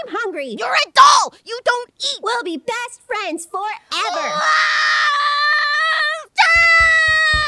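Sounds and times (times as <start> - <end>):
speech: 0.2 - 5.7
girl screaming: 4.0 - 7.4
faint low thumps: 6.5 - 7.4.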